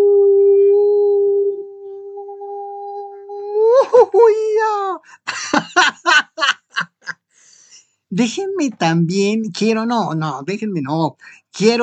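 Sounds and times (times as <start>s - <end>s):
person imitating a wolf howl: 0.0s - 3.8s
speech: 4.2s - 6.2s, 8.1s - 11.8s
laughter: 5.2s - 7.2s.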